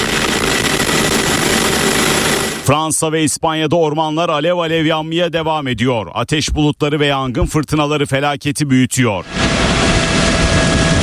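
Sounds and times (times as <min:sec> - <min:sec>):
firefighting aircraft engine drone flying over European forest fires: 0:00.0 - 0:02.9, 0:09.2 - 0:11.0
speech: 0:02.7 - 0:09.4.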